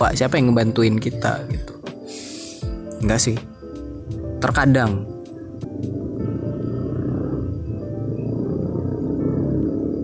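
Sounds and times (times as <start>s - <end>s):
speech: 0.0s - 1.7s, 3.0s - 3.5s, 4.1s - 5.1s
motorcycle engine rumbling: 3.6s - 10.0s.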